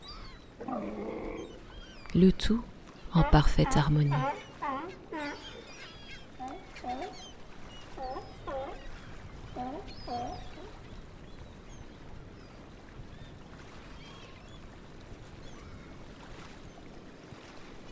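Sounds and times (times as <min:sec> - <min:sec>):
speech: 0:02.2 - 0:04.4
seabirds calling in short squawking bursts: 0:03.0 - 0:10.8.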